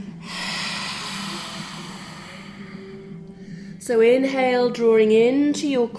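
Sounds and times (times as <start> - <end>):
forceful lion's breath exhale during a yoga session: 0.2 - 3.8
speech: 3.9 - 5.9.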